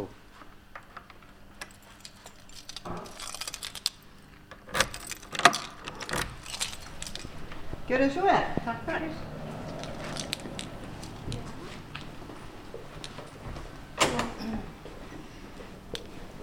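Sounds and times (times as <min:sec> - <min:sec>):
bunch of keys jingling while unlocking a shop door: 0:01.4 - 0:14.2
speech: 0:07.9 - 0:09.4.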